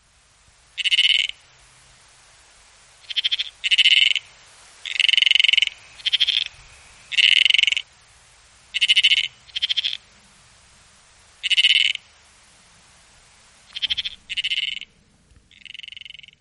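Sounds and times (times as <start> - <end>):
frog calling: 0.7 - 1.5, 2.9 - 8.0, 8.6 - 10.2, 11.0 - 12.2, 13.6 - 16.3.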